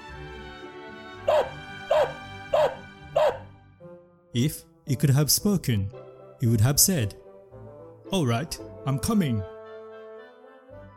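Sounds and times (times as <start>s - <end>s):
dog barking: 1.2s - 3.5s
speech: 4.4s - 7.2s, 8.1s - 9.5s.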